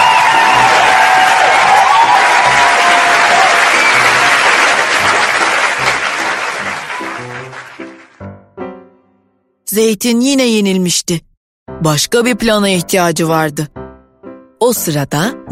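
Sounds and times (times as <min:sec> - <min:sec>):
loud crowd cheering and screaming: 0:00.0 - 0:07.7
speech: 0:09.8 - 0:13.8, 0:14.6 - 0:15.5.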